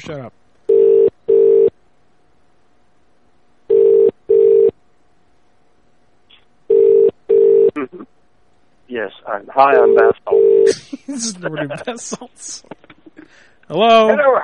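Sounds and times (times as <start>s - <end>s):
speech: 0.0s - 0.4s, 9.0s - 14.4s
telephone ringing in a double-burst pattern: 0.7s - 1.7s, 3.7s - 4.7s, 6.7s - 7.7s, 9.8s - 10.7s.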